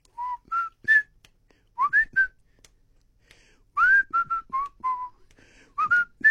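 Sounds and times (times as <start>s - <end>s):
person whistling a short melodic tune: 0.0s - 1.2s, 1.8s - 2.4s, 3.8s - 6.2s.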